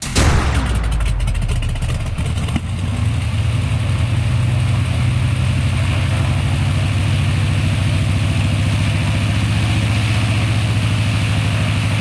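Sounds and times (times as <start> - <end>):
bomber plane starting: 0.0 - 12.0.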